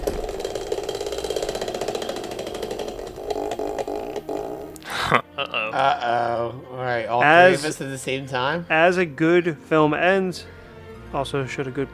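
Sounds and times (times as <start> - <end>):
spinning game wheel ratcheting: 0.0 - 4.8
speech: 5.1 - 11.9.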